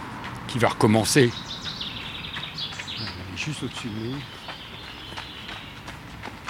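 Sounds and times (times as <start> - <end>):
steady outdoor hiss: 0.0 - 6.4
speech: 0.5 - 1.6, 3.4 - 4.4
common chaffinch singing overhead: 0.8 - 5.9.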